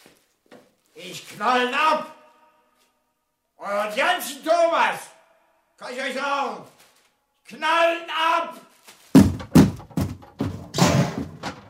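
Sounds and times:
speech: 1.0 - 2.2, 3.6 - 5.1, 5.8 - 6.8, 7.5 - 8.6
door being battered in during a police raid: 9.1 - 11.6.

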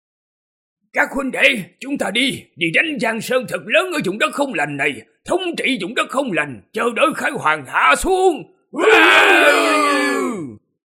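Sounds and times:
speech: 1.0 - 10.0
skeletons and zombies roaring together: 8.8 - 10.6.

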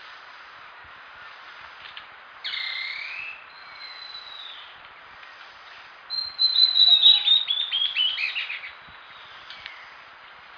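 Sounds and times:
bird song of whistled notes, chirps and warbles: 2.4 - 5.1, 6.1 - 10.4.

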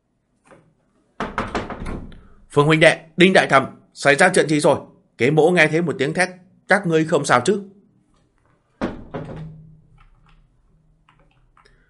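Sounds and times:
hurried banging on a door outside the main house: 1.2 - 2.0, 8.8 - 9.6
speech: 2.6 - 7.8.

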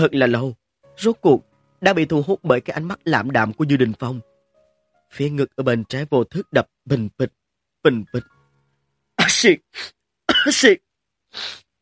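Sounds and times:
speech: 0.0 - 4.3, 5.1 - 8.4, 9.3 - 11.6
loud sneezes imitated by a human voice: 9.2 - 11.7.

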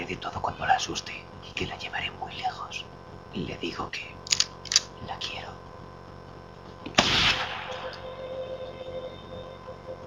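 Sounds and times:
quiet steady low background: 0.0 - 10.0
speech: 0.1 - 4.2, 5.0 - 5.7
gunshot fired through a silencer: 6.9 - 8.0.

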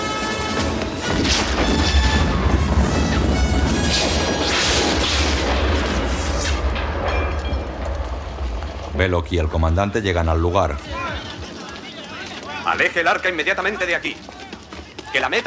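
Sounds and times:
airplane exploding in fire: 0.4 - 8.9
speech: 9.0 - 11.3, 12.8 - 14.4, 15.1 - 15.4.

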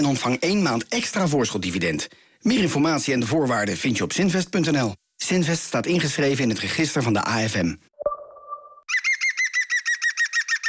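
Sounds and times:
speech: 0.0 - 7.9
European green woodpecker laughing call: 8.9 - 10.6.

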